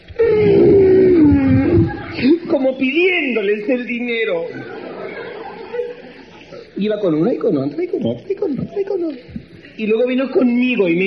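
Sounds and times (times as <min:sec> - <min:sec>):
voice imitating elephant trumpeting: 0:00.0 - 0:02.1
laughter: 0:00.2 - 0:02.8, 0:04.3 - 0:06.8
speech: 0:02.7 - 0:04.7, 0:06.8 - 0:11.0.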